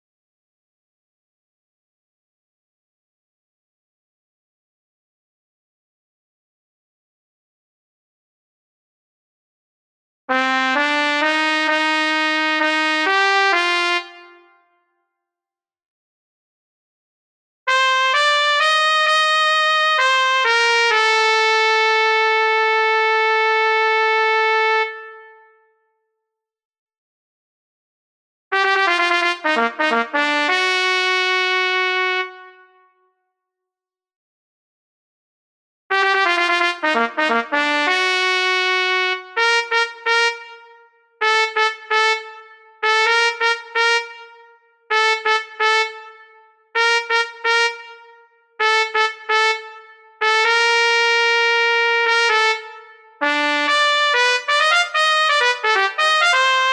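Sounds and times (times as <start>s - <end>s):
trumpet in B flat: 10.3s - 14.8s, 17.7s - 25.7s, 28.5s - 33.0s, 35.9s - 56.7s.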